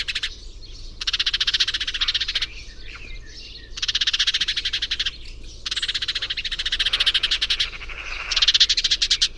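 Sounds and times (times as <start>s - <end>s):
house sparrow Passer domesticus giving rough rattling chatters: 1.0s - 2.5s, 3.8s - 9.3s.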